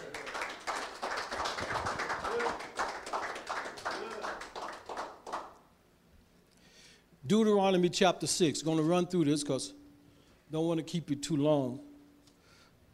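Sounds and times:
crowd clapping as an offering during a sermon: 0.0 - 5.6
speech: 7.3 - 9.8, 10.5 - 11.9.

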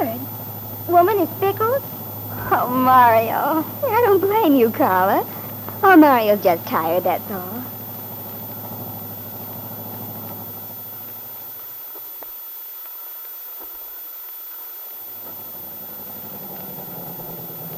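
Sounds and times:
new car engine idling: 0.0 - 12.4, 14.9 - 17.7
faint hiss: 0.0 - 17.7
speech: 1.0 - 1.9, 2.5 - 7.8.

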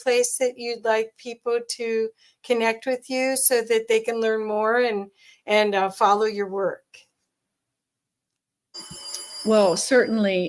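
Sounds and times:
speech: 0.0 - 7.0, 8.8 - 10.4
telephone bell ringing in the room with metallic high-pitched trill: 8.8 - 10.4.

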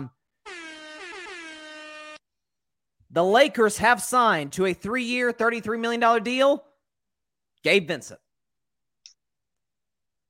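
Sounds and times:
loud sustained brassy air horn blast: 0.4 - 2.2
speech: 3.1 - 6.7, 7.6 - 8.2.

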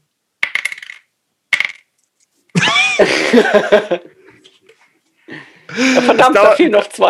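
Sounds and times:
dice rattling and clattering across a hard surface: 0.4 - 2.1
laughter: 2.6 - 4.4, 5.3 - 6.7
speech: 3.0 - 4.2, 5.8 - 7.0.

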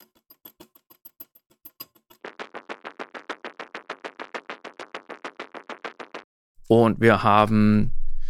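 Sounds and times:
denser fuller faster clock-like ticking: 2.2 - 6.3
speech: 6.7 - 8.0.

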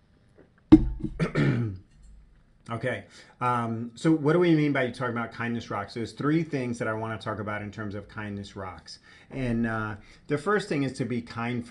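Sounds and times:
cough: 1.0 - 1.9
rough gravelly throat clearing: 1.0 - 1.9
speech: 2.7 - 11.6.

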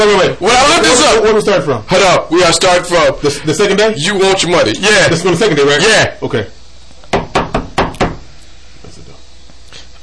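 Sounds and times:
speech: 0.0 - 6.6
knocking on a door: 7.1 - 8.3.

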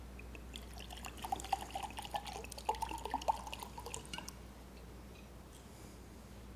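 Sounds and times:
water being poured into a glass: 0.2 - 4.4
glass clinking as it is set down: 0.3 - 5.3.

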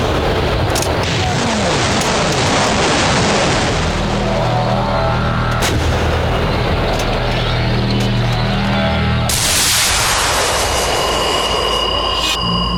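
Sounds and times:
sharp booming artillery blasts: 0.0 - 12.2
artillery batteries of 105s and other heavy guns firing together: 0.0 - 12.6.

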